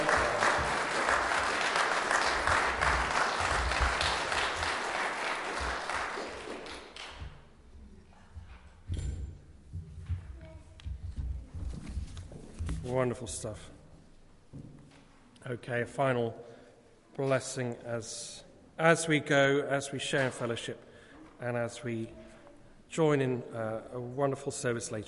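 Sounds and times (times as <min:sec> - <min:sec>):
congregation clapping at a church service: 0:00.0 - 0:07.5
soft knocks and rustles: 0:08.4 - 0:12.9
speech: 0:13.0 - 0:13.8, 0:15.5 - 0:16.5, 0:17.2 - 0:22.2, 0:22.9 - 0:25.0.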